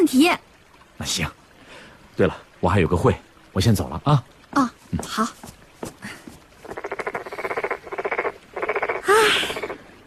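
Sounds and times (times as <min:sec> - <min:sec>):
speech: 0:00.0 - 0:01.4, 0:02.2 - 0:06.2
toad croaking in rattling pulsed bursts: 0:06.6 - 0:09.8.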